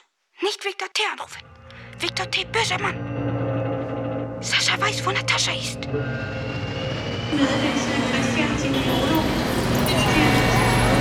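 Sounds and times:
speech: 0.4 - 3.1, 4.4 - 6.7, 7.3 - 9.3
airplane cabin engine drone on a flight to Moscow: 6.0 - 11.0.

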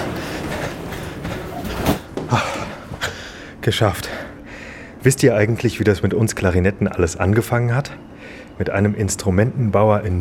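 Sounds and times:
subway train sliding-door clunk: 0.0 - 2.9
subway train rumbling: 0.0 - 4.4
speech: 3.6 - 4.2, 5.0 - 10.1.

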